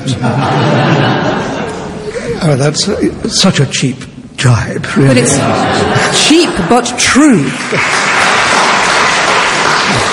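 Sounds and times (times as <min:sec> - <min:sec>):
laughter: 0:00.0 - 0:02.6, 0:05.2 - 0:08.4
speech: 0:00.1 - 0:01.4, 0:02.4 - 0:08.2
audience applause at a debate: 0:06.1 - 0:10.1.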